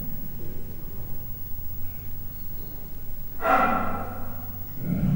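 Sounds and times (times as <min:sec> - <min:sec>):
three-month-old captive leopard cub chirping in a zoo: 0:02.5 - 0:05.0.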